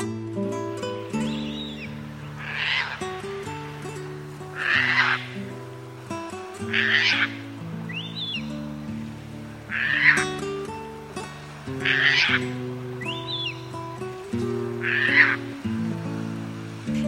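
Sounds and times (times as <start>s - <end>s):
Caspian tern calling: 0.0s - 17.0s.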